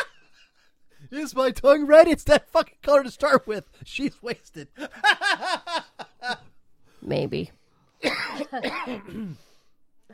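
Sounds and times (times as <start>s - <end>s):
speech: 1.1s - 5.6s, 7.0s - 9.5s
laughter: 4.7s - 6.6s
raspy throaty cough: 8.0s - 9.6s.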